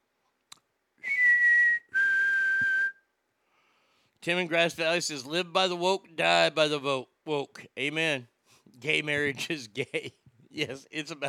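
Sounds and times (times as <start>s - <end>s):
man whistling a tune: 1.0s - 3.2s
speech: 4.2s - 11.2s
laughter: 9.3s - 11.2s.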